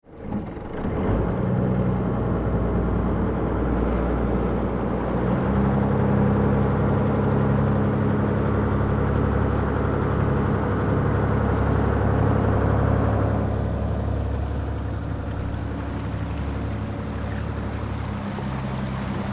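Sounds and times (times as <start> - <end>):
ship engine: 0.0 - 19.3.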